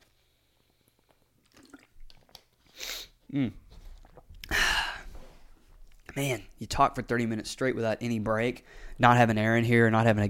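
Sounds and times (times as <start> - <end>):
person gulping water: 1.0 - 2.4, 3.3 - 5.0
speech: 3.3 - 3.6, 6.2 - 10.2
person swallowing: 3.3 - 5.1.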